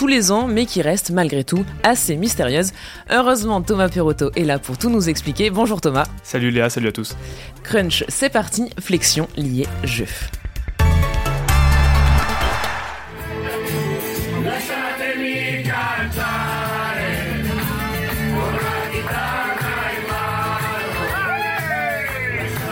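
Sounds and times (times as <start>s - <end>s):
speech: 0.0s - 10.5s
Italian rugby fans singing together in a packed tram in Lyon: 11.5s - 22.7s
rugby fans whooping and shouting in a tram: 21.0s - 22.2s.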